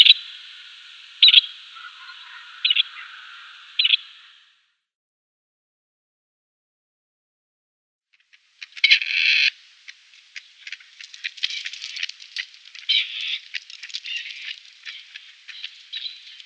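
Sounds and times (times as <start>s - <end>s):
grey partridge display call: 0.0s - 4.4s, 8.2s - 16.4s.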